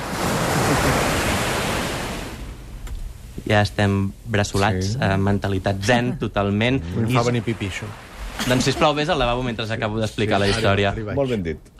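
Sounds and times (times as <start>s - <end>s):
ocean surf: 0.0s - 3.4s, 7.0s - 10.7s
laughter: 0.6s - 1.2s, 8.4s - 9.4s
speech: 3.5s - 11.7s.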